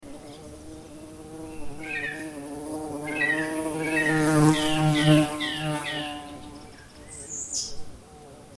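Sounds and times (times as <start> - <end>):
bumblebee: 0.0 - 8.5.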